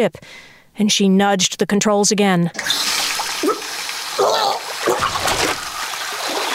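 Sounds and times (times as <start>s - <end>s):
speech: 0.0s - 2.9s
cold water running from a tap: 2.6s - 6.5s
voice-like murmurs: 3.4s - 5.1s.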